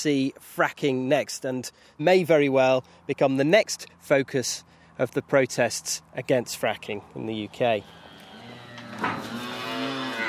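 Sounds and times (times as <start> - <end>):
speech: 0.0 - 8.0
small black dairy cow mooing in a field: 7.8 - 10.2.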